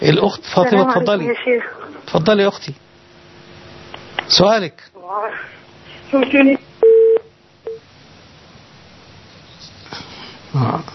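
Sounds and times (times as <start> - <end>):
speech: 0.0 - 2.8, 4.2 - 6.7, 9.9 - 10.9
telephone line tones on a call to Algeria: 6.8 - 7.8.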